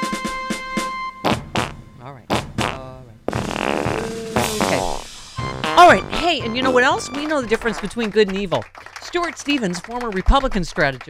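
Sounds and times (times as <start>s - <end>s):
fart sound effects: 1.2s - 6.2s
speech: 5.9s - 11.0s.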